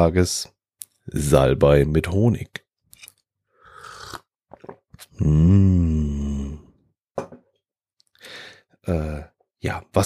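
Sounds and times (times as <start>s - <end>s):
speech: 0.0s - 2.6s, 5.1s - 6.6s, 8.3s - 10.0s
person with a cold crunching and chewing a throat lozenge: 3.7s - 6.6s.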